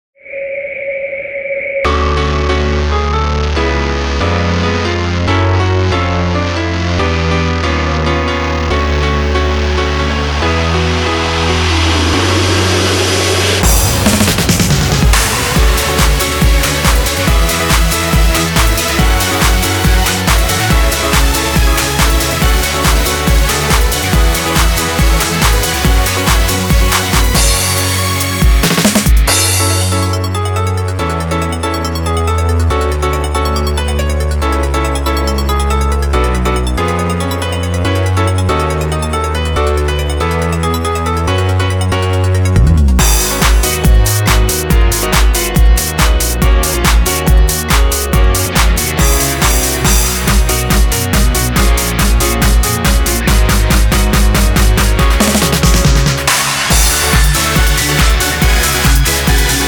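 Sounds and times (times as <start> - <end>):
distorted overdrive instrumental: 1.8 - 59.6.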